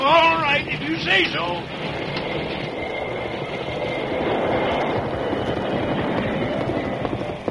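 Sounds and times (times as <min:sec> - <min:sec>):
heavy steam train grinding along: 0:00.0 - 0:07.5
speech: 0:01.0 - 0:01.9.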